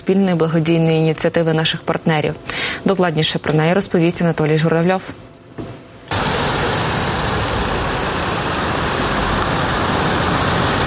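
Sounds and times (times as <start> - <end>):
speech: 0.0 - 5.7
ambulances and evacuation vehicles driving in: 6.1 - 10.8.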